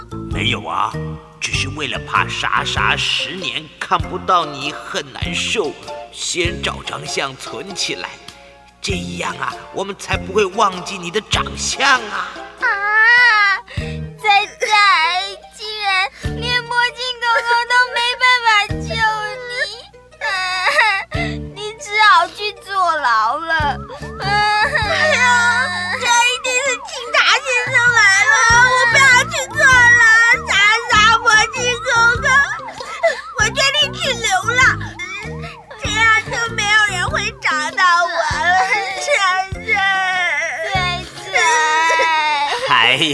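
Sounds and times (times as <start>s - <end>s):
speech: 0.5s - 12.9s
two small children crying: 12.6s - 16.3s, 17.1s - 22.7s, 23.6s - 43.0s.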